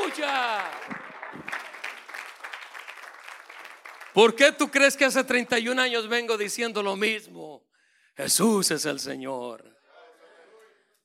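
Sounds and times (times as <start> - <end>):
audience applause: 0.0 - 4.4
speech: 4.2 - 9.8.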